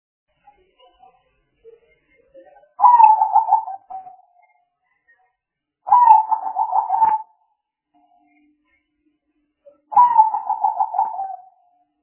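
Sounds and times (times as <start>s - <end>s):
spotted dove cooing: 2.8s - 4.1s, 5.9s - 7.3s, 9.9s - 11.5s.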